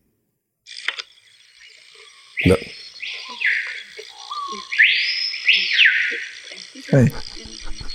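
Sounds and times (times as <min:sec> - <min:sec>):
hum of insects: 0:00.7 - 0:07.9
screaming piha calling in a forest: 0:01.5 - 0:07.9
speech: 0:02.4 - 0:02.8, 0:06.9 - 0:07.3.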